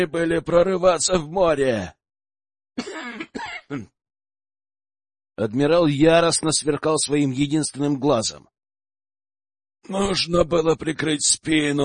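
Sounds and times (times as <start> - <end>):
speech: 0.0 - 2.0, 2.8 - 4.0, 5.4 - 8.6, 9.9 - 11.8
man coughing: 2.8 - 4.0.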